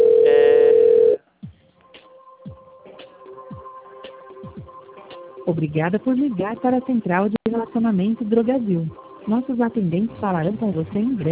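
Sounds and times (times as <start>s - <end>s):
telephone line tone on a pharmacy chain's customer service line: 0.0s - 1.2s
speech: 5.5s - 11.2s.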